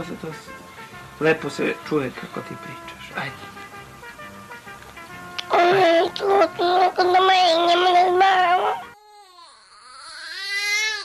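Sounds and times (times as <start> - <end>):
speech: 0.0 - 3.6, 5.8 - 8.8
19-day-old newborn boy whimpering and crying: 5.4 - 11.0.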